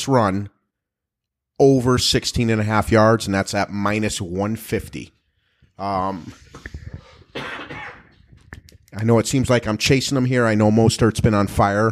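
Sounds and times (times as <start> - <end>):
speech: 0.0 - 0.6, 1.6 - 5.2, 5.8 - 6.8, 8.9 - 11.9
person clearing throat: 7.0 - 8.2
person coughing: 7.0 - 8.2.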